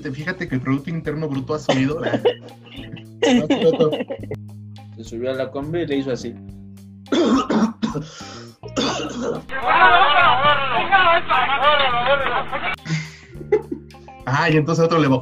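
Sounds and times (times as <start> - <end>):
speech: 0.0 - 6.5, 7.2 - 8.4, 9.0 - 13.0, 14.3 - 15.1
long strained voiced throat clearing: 1.7 - 3.7, 7.1 - 8.1, 8.8 - 9.4
person coughing harshly: 1.7 - 4.3, 7.1 - 8.2, 8.8 - 9.5
laughter: 1.7 - 4.4, 8.9 - 13.8.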